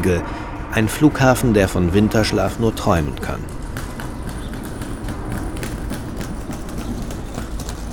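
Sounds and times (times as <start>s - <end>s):
speech: 0.0s - 3.6s
rumbling outdoor noise at Pankow station: 0.0s - 7.9s
rolling suitcases of passing people clattering at Pankow station: 3.0s - 7.9s.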